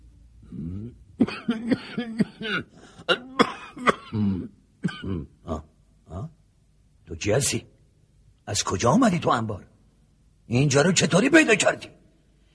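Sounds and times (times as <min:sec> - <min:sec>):
throat-clearing grunts: 0:00.5 - 0:06.3
man coughing harshly: 0:00.8 - 0:05.7
speech: 0:01.2 - 0:03.2, 0:07.2 - 0:07.7, 0:08.5 - 0:09.7, 0:10.5 - 0:12.0.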